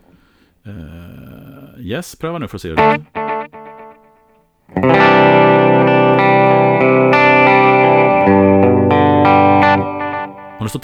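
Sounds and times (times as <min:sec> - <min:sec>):
speech: 0:00.6 - 0:01.2, 0:01.8 - 0:03.2, 0:10.7 - 0:10.8
distorted instrument playing sustained chords through a delay echo effect: 0:02.8 - 0:04.2, 0:04.8 - 0:10.6.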